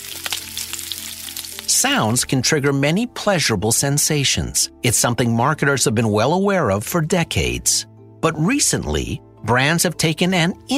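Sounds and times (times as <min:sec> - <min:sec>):
bacon sizzling and frying in a pan: 0:00.0 - 0:02.2
speech: 0:01.8 - 0:10.7.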